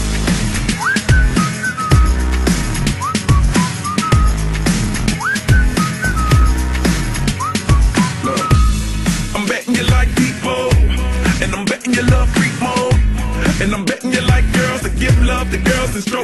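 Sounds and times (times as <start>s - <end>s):
loud punchy beat with heavy bass and sharp percussion: 0.0s - 16.2s
human whistling melody with quick upward slides: 0.6s - 9.0s.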